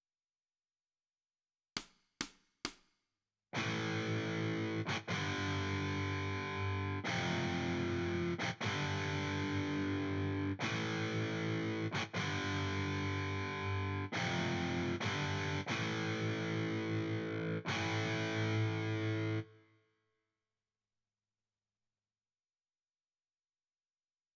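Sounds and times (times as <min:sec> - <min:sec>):
guitar: 0:03.6 - 0:19.8.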